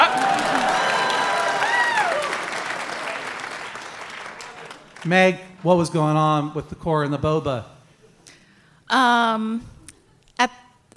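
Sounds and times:
whoops and cheering voices: 0:00.0 - 0:03.3
crowd clapping: 0:00.0 - 0:06.4
speech: 0:05.0 - 0:07.7, 0:08.9 - 0:09.7, 0:10.4 - 0:10.9.

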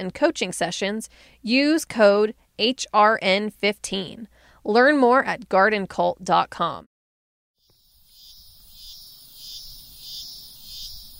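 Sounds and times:
speech: 0:00.0 - 0:06.9
shrill high-pitched insect drone: 0:07.6 - 0:11.1.

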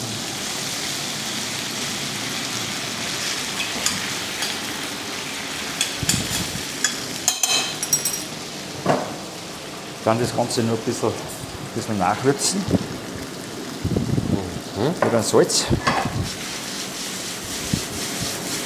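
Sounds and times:
Nockerl dumplings sizzling in a frying pan: 0:00.0 - 0:18.6
speech: 0:10.1 - 0:12.9, 0:14.8 - 0:16.4.

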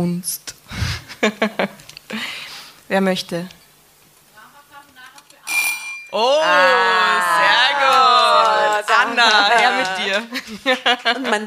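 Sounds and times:
speech: 0:00.0 - 0:00.6, 0:01.2 - 0:02.2, 0:02.9 - 0:03.6, 0:06.1 - 0:11.4
laughter: 0:00.9 - 0:01.8, 0:06.2 - 0:11.4
bell ringing: 0:05.5 - 0:06.3.

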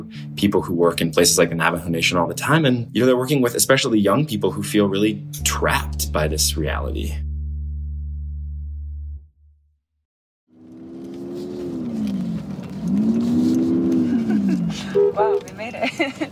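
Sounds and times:
speech: 0:00.0 - 0:07.2
low engine drone: 0:05.2 - 0:09.4, 0:10.6 - 0:15.0
truck engine revving in four-wheel drive up a steep hill: 0:10.6 - 0:15.4
laughter: 0:14.0 - 0:16.3.

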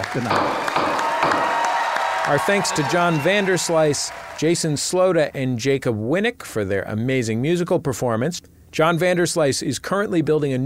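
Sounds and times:
speech: 0:00.0 - 0:01.0, 0:02.3 - 0:10.6
gavel knocking: 0:00.0 - 0:02.6
crowd clapping and cheering: 0:00.0 - 0:05.1.

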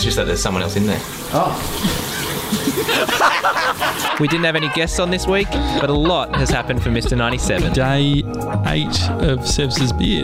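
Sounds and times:
shower running: 0:00.0 - 0:10.2
speech: 0:00.1 - 0:10.2
laughter: 0:01.8 - 0:08.2.

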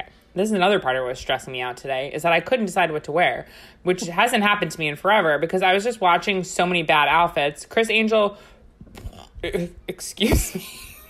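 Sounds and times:
speech: 0:00.4 - 0:10.9
loud throaty drawn-out burp: 0:09.0 - 0:09.6.

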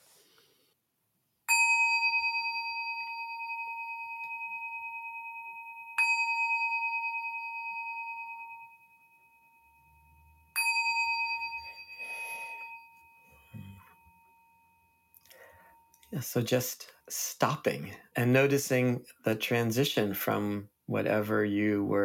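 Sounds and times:
meditation bell on a desk struck and ringing: 0:01.5 - 0:16.1
speech: 0:16.1 - 0:22.0.

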